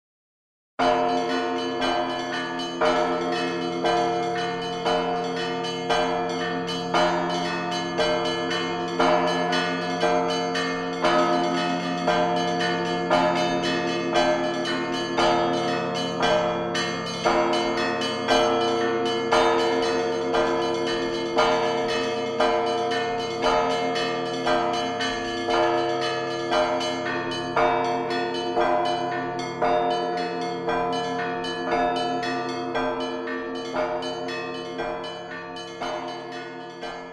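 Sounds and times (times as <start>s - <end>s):
bell tower ringing: 0.8s - 37.1s.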